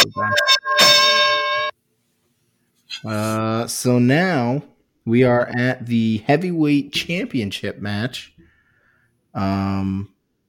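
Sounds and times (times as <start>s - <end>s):
wrestling ring bell clanging: 0.0s - 1.7s
speech: 0.1s - 0.6s, 3.0s - 8.4s, 9.3s - 10.1s.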